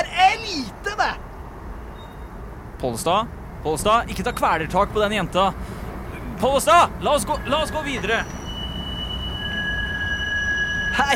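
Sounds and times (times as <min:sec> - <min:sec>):
low rumble of tram rolling: 0:00.7 - 0:11.1
tram wheels squealing on rails: 0:01.8 - 0:02.4, 0:04.1 - 0:11.1
speech: 0:02.8 - 0:05.8, 0:06.4 - 0:08.4.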